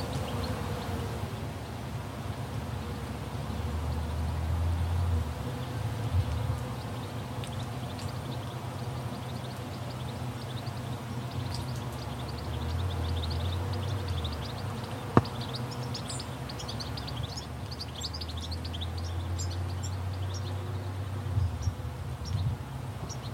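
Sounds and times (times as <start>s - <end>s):
faint outdoor hiss: 0.0s - 23.3s
several birds chirping and singing in a vineyard in Central Otago, New Zealand: 5.6s - 23.3s.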